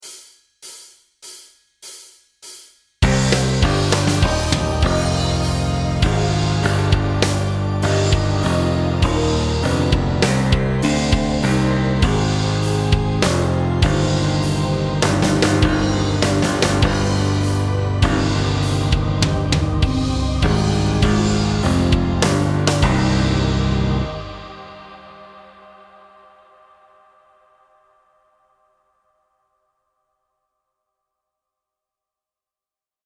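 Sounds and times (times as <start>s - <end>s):
metal guitar counterpoint backing track: 3.0s - 24.8s.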